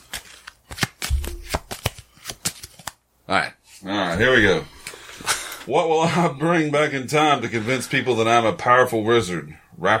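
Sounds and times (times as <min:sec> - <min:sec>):
deck of cards being shuffled: 0:00.0 - 0:03.0
speech: 0:03.3 - 0:09.9.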